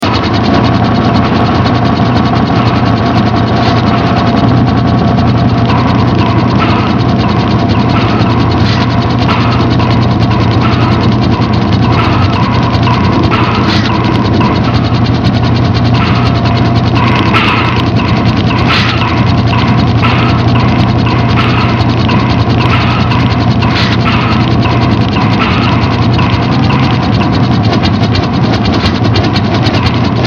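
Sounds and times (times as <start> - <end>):
gears: 0.0 - 30.2.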